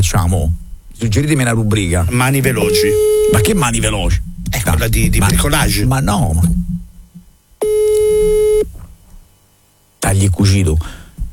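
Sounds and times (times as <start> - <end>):
speech: 0.0 - 6.6, 10.1 - 11.0
telephone busy tone after placing a call: 2.6 - 3.6, 7.6 - 8.6.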